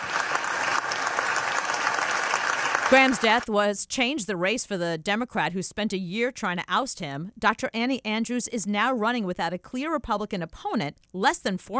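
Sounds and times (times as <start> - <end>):
applause in the Senate chamber: 0.0 - 3.4
speech: 2.9 - 11.7.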